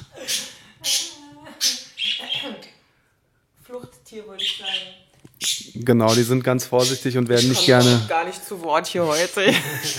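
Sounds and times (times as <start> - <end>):
pet bird squawking: 0.2 - 2.6, 4.3 - 8.1
speech: 4.2 - 9.9.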